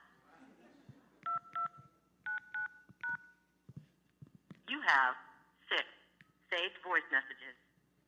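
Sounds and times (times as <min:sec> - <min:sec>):
faint room noise: 0:00.0 - 0:08.0
touch-tone phone keypad beeps entering a voicemail password: 0:01.2 - 0:03.4
speech: 0:04.9 - 0:07.6.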